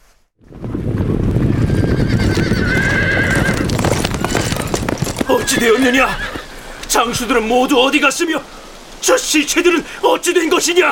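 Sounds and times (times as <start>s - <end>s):
troops' horses galloping: 0.8s - 7.2s
horse whinnying: 1.5s - 6.6s
speech: 5.6s - 10.8s.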